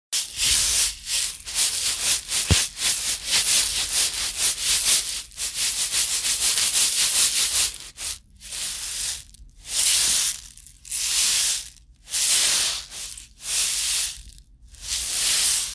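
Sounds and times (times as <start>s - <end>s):
sesame seeds shaken in a water bottle: 0.2s - 15.7s.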